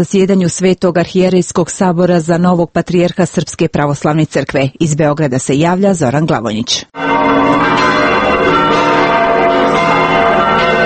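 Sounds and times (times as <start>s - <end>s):
speech: 0.0s - 8.0s
cathedral church bells ringing in Belgrade Serbia for election of a patriarch: 7.0s - 10.8s.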